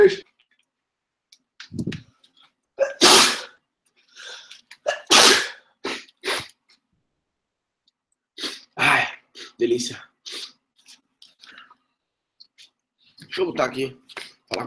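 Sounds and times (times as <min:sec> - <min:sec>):
person sneezing: 0:02.8 - 0:03.6, 0:04.8 - 0:06.6
person breathing: 0:04.0 - 0:04.6
speech: 0:09.6 - 0:10.1, 0:13.4 - 0:14.6.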